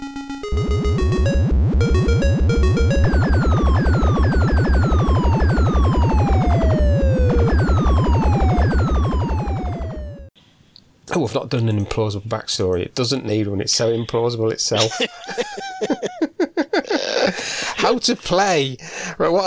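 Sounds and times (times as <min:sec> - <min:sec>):
rapid steady low pulsing beat of an arcade horizontally scrolling shooter: 0:00.0 - 0:10.1
sharp electronic bleeps of an arcade horizontally scrolling shooter: 0:00.0 - 0:10.3
speech: 0:11.2 - 0:15.9, 0:17.9 - 0:19.4
laughter: 0:14.7 - 0:17.4.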